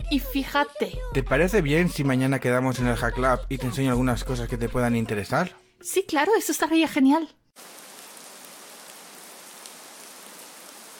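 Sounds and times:
speech: 0.1 - 7.8
heavy rain: 7.6 - 10.9.

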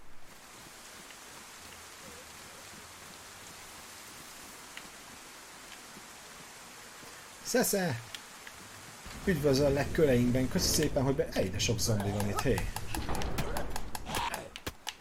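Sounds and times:
rain falling outside in bad weather: 0.0 - 14.9
speech: 7.5 - 8.1, 9.3 - 13.2.

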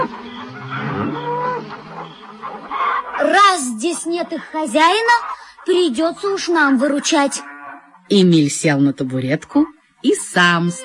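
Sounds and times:
cows mooing loudly in a pasture waiting to be milked: 0.0 - 3.2, 7.4 - 8.0
animal sounds: 0.0 - 8.9
speech: 3.8 - 7.5, 8.1 - 10.8.

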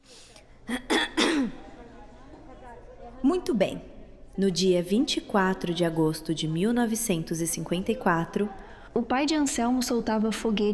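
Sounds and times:
woman clearing her throat in a courtroom: 0.7 - 1.7
speech: 3.5 - 10.7.

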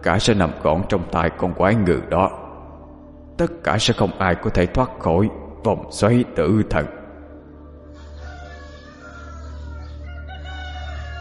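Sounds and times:
speech: 0.0 - 2.4, 3.4 - 7.0
rooster crowing in a village: 7.8 - 11.1.

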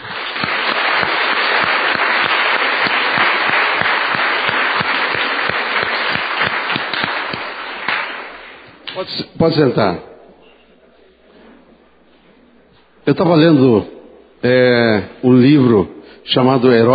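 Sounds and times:
church congregation applauding: 0.0 - 8.7
speech: 9.0 - 10.1, 13.0 - 16.9.

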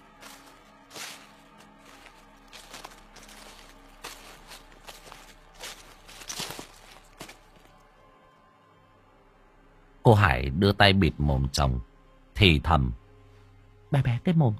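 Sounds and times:
footsteps crunching through leaves in a garden at night: 0.0 - 7.8
speech: 10.1 - 13.0, 13.9 - 14.5.

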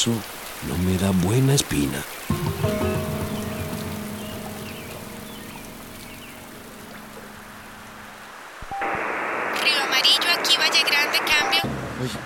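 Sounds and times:
speech: 0.0 - 2.8
rain falling steadily by a river: 0.0 - 12.2
low hum: 2.4 - 9.6.

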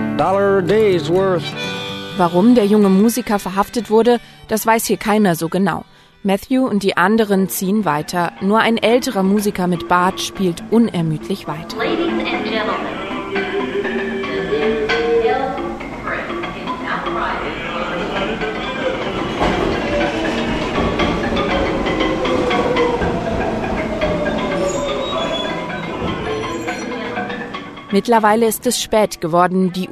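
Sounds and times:
speech: 0.2 - 13.8, 27.9 - 29.9
subway train rumbling and rattling along the rails, heard from inside: 8.5 - 28.2.

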